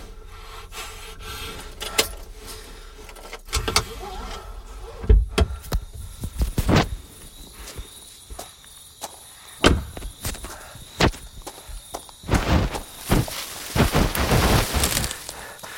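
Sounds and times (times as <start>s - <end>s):
insect chirring: 3.8s - 15.7s
footsteps trudging through tall grass: 12.2s - 15.7s.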